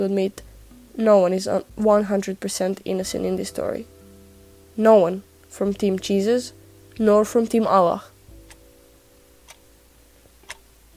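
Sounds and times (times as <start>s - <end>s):
speech: 0.0s - 3.9s, 4.8s - 8.1s
faint constant low hum: 0.0s - 10.9s
wristwatch ticking: 9.4s - 9.6s, 10.4s - 10.6s.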